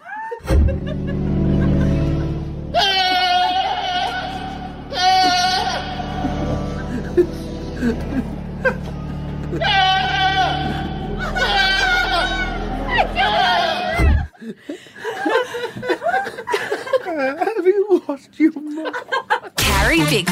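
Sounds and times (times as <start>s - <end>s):
laughter: 0.0s - 18.0s, 18.6s - 19.6s
low droning organ music at a cathedral in Britain: 0.5s - 14.2s
speech: 0.7s - 1.4s
goat bleating: 2.8s - 6.1s, 9.6s - 10.9s.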